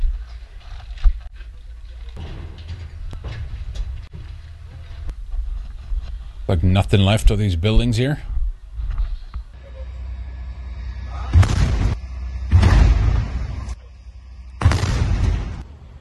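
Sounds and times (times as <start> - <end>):
steady low background: 0.0 - 15.9
speech: 6.5 - 8.3
bombs exploding: 11.3 - 13.8, 14.6 - 15.6.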